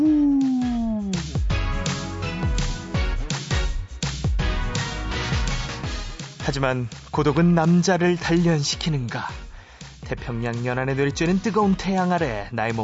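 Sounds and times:
person imitating a wolf howl: 0.0s - 1.3s
upbeat music with punchy drum hits: 0.0s - 12.8s
speech: 6.5s - 9.4s, 10.1s - 12.8s.

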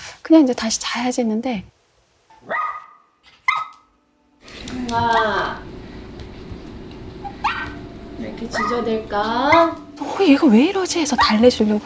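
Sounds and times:
hissy background: 0.0s - 11.8s
speech: 0.3s - 1.8s, 4.9s - 5.7s, 8.2s - 11.8s
dog giving short sharp barks: 2.4s - 3.9s, 7.3s - 7.8s, 8.5s - 8.9s, 9.5s - 9.8s.

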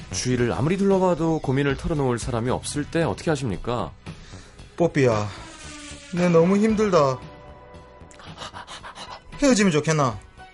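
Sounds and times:
speech: 0.1s - 4.2s, 4.8s - 5.5s, 6.1s - 7.3s, 9.4s - 10.3s
dog panting: 8.2s - 9.3s.

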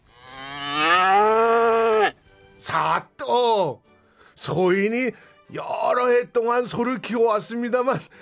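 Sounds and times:
calf mooing: 0.0s - 2.2s
speech: 4.4s - 8.2s.

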